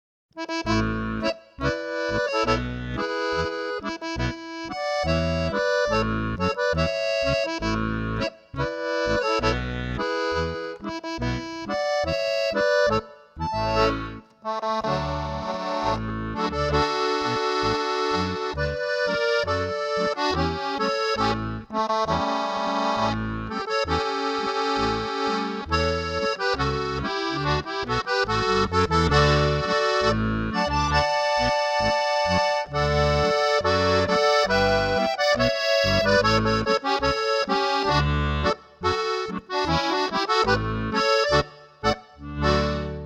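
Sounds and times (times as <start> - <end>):
German folk music: 0.4 - 43.0.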